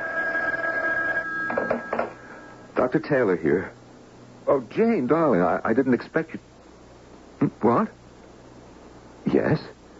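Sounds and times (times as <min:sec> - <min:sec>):
telephone bell ringing: 0:00.0 - 0:02.7
speech: 0:02.8 - 0:03.8, 0:04.5 - 0:06.5, 0:07.4 - 0:08.0, 0:09.3 - 0:09.8.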